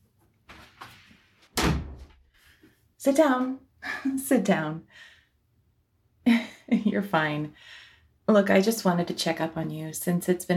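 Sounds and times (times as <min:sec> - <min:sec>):
door shutting with a solid thud: 0:01.6 - 0:02.2
speech: 0:03.0 - 0:05.1, 0:06.7 - 0:10.5.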